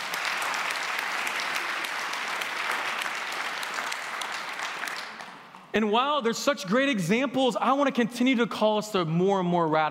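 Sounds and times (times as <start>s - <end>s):
large congregation applauding: 0.0s - 5.6s
speech: 5.8s - 9.8s.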